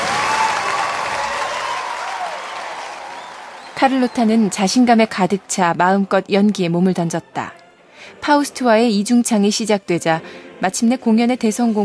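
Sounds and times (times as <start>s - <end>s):
faint cheering: 0.0s - 5.6s
thunderous applause from a large crowd: 0.0s - 6.1s
speech: 3.8s - 11.8s.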